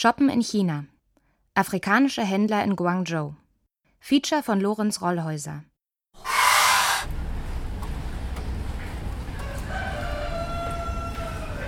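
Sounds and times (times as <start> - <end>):
speech: 0.0 - 0.9, 1.6 - 3.4, 4.0 - 6.3
two roosters crowing: 6.2 - 7.1, 9.2 - 11.6.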